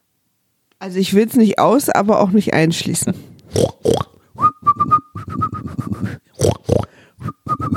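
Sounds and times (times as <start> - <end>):
speech: 0.8 - 4.1
loud rough grunting bursts: 3.5 - 4.2, 6.4 - 6.9
person whistling a bouncy tune: 4.4 - 6.2, 7.2 - 7.7.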